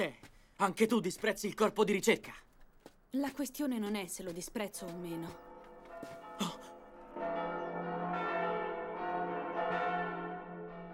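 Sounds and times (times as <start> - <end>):
speech: 0.0 - 2.5, 3.1 - 6.2
church bells ringing: 4.7 - 10.9.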